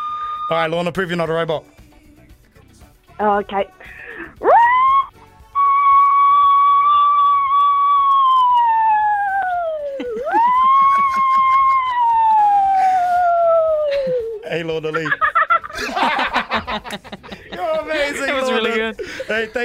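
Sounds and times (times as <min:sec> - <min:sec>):
person vocally mimicking a wailing emergency siren: 0:00.0 - 0:00.6, 0:04.4 - 0:14.4
speech: 0:00.5 - 0:01.8, 0:03.2 - 0:04.6, 0:14.5 - 0:15.2, 0:15.8 - 0:19.6
laughter: 0:09.6 - 0:19.6.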